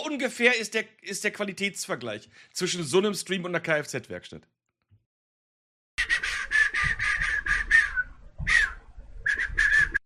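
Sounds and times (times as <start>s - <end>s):
speech: 0.1s - 4.6s
man whistling loudly into a microphone with distortion: 6.0s - 10.0s.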